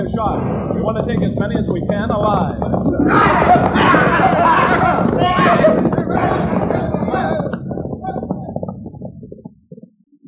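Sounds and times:
speech: 0.0 - 6.4
horses galloping as riders flee: 0.0 - 10.2
men shouting over the commotion: 2.9 - 7.5.

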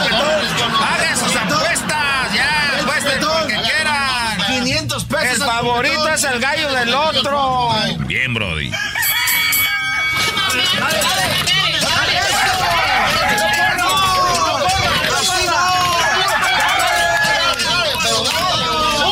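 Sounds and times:
laughter: 0.0 - 4.2, 10.0 - 19.1
dense crowd shouting and talking at a cockfight: 0.0 - 19.1
roosters crowing at an illegal cockfight: 8.7 - 11.2, 11.8 - 19.1.

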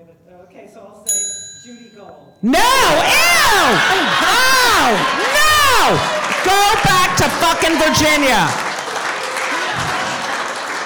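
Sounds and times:
speech: 0.7 - 4.2, 4.9 - 5.2, 5.9 - 8.6
bell being rung: 1.1 - 2.4
laughter: 2.7 - 10.8.

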